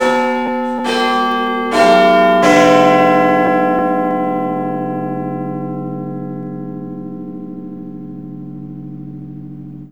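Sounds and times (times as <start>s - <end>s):
Big Ben clock tower bell: 0.0s - 9.8s.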